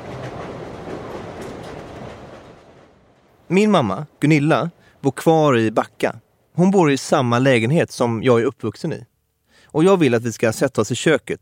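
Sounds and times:
train wheels clattering: 0.0 - 3.5
train rolling along the rails: 0.0 - 6.5
speech: 3.5 - 9.1, 9.7 - 11.3.

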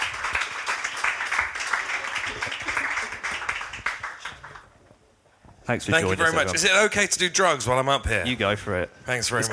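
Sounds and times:
audience applause for a guest being introduced: 0.0 - 4.7
speech: 5.7 - 9.5.

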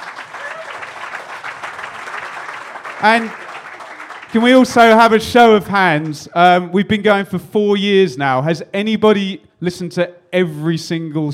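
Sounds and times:
room full of people applauding: 0.0 - 4.7
speech: 3.0 - 3.4, 4.3 - 11.3.

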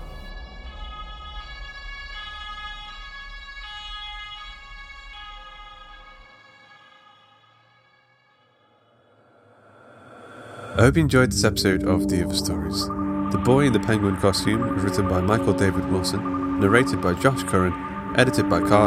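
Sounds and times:
emergency vehicle sirens wailing: 10.7 - 18.8
speech: 10.8 - 18.8.

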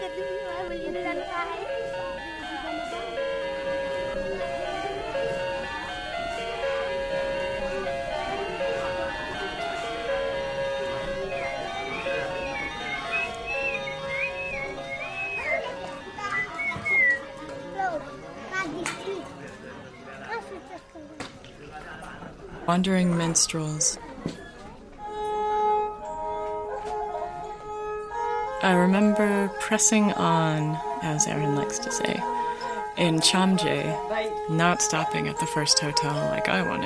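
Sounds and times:
wall clock playing a bright electronic chime melody: 0.0 - 16.6, 25.1 - 36.8
murmur of people chatting in a busy room: 0.0 - 36.8
speech: 22.7 - 24.4, 28.6 - 32.3, 33.0 - 36.8.

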